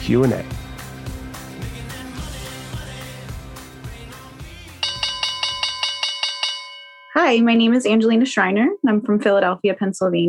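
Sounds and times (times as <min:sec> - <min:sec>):
busy music: 0:00.0 - 0:06.2
speech: 0:00.1 - 0:00.6, 0:07.2 - 0:10.2
bright bell ringing in repeated strikes: 0:04.7 - 0:07.7.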